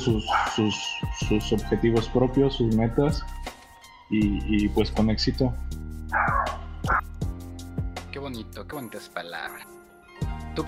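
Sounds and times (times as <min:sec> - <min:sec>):
speech: 0:00.0 - 0:03.5, 0:04.1 - 0:06.2, 0:08.3 - 0:09.8
dog barking: 0:00.2 - 0:00.6, 0:06.1 - 0:07.0.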